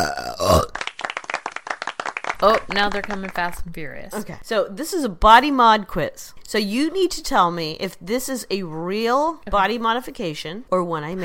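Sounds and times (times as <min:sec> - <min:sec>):
loud drawn-out burp: 0:00.0 - 0:00.8
speech: 0:02.4 - 0:11.2.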